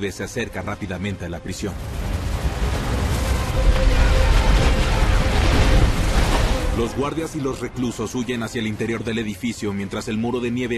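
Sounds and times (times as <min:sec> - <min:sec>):
speech: 0:00.0 - 0:02.1, 0:03.6 - 0:04.0, 0:06.8 - 0:10.7
heavy explosions rumbling beneath a flying helicopter: 0:01.7 - 0:07.1.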